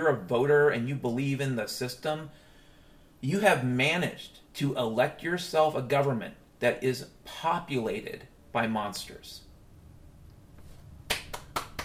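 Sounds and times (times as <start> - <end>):
speech: 0.0 - 2.5, 3.2 - 9.4
slow sarcastic hand clapping: 11.1 - 11.8.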